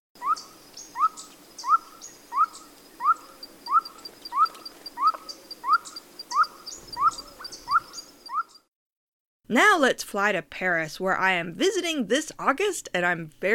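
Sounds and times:
blue-eyed ground dove hooting: 0:00.2 - 0:08.6
faint higher chirps from other birds: 0:00.2 - 0:08.7
speech: 0:09.5 - 0:13.5.

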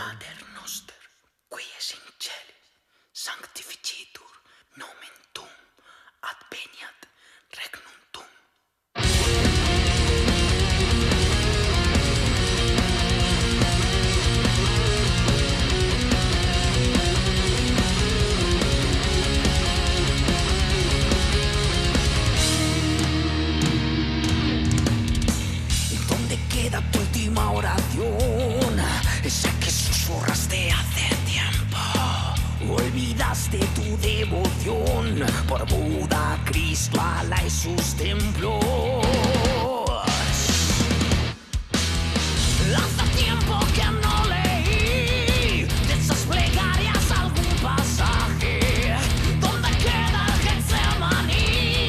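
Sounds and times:
soft whispered voice: 0:00.0 - 0:08.6
full-band song with drums and dense instrumentation played on the radio: 0:09.0 - 0:51.8.

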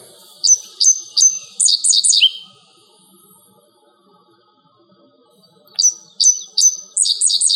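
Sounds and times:
dickcissel song of sharp chips and buzzy trill: 0:00.4 - 0:02.5, 0:05.8 - 0:07.5.

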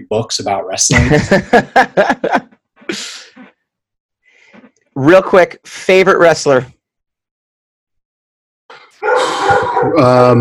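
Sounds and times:
speech: 0:00.0 - 0:03.2, 0:05.0 - 0:06.8, 0:09.8 - 0:10.4
laughter: 0:00.9 - 0:03.4
dog barking: 0:09.0 - 0:10.0.

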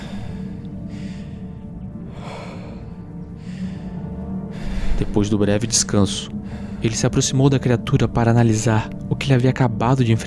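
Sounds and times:
man panting heavily catching his breath after a fright: 0:00.0 - 0:05.1
low rumbling background: 0:00.0 - 0:10.2
speech: 0:05.0 - 0:10.2.

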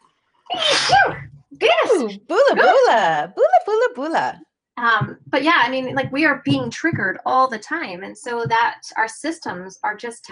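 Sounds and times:
human sneeze: 0:00.5 - 0:01.2
speech: 0:02.0 - 0:10.2.

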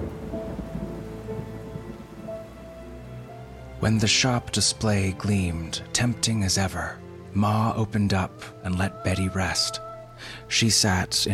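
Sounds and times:
rolling thunder: 0:00.0 - 0:04.6
steady rain: 0:00.0 - 0:11.3
speech: 0:03.8 - 0:11.3.

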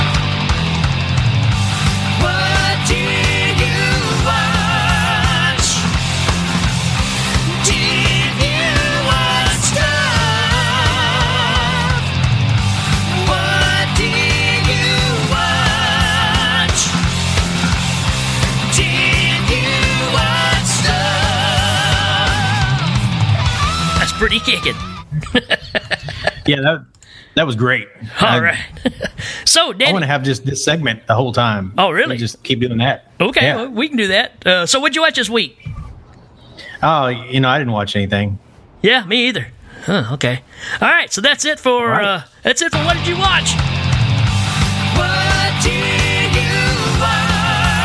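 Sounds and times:
upbeat instrumental theme tune with driving beat, bass and synth or guitar: 0:00.0 - 0:24.9, 0:42.7 - 0:47.8
laughter: 0:23.9 - 0:26.6
speech: 0:24.6 - 0:24.8, 0:26.5 - 0:35.9, 0:36.8 - 0:43.8.

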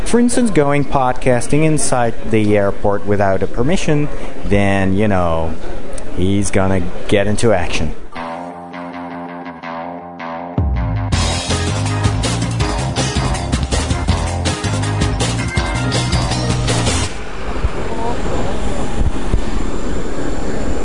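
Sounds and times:
speech: 0:00.1 - 0:08.0
music: 0:08.2 - 0:17.2
airplane engines roaring on a sunny airport apron: 0:16.4 - 0:20.8.

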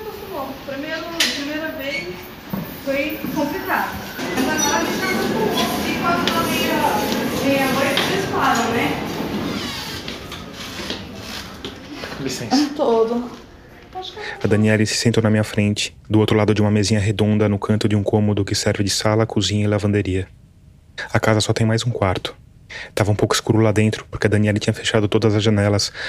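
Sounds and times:
train passing on nearby railway line: 0:00.0 - 0:13.2
speech: 0:00.7 - 0:04.0, 0:12.2 - 0:13.4, 0:14.0 - 0:20.4, 0:21.0 - 0:26.0.

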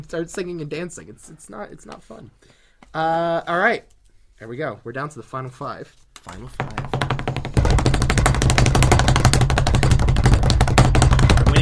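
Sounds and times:
speech: 0:00.0 - 0:06.9
rapid loud banging on a table: 0:06.5 - 0:11.6.

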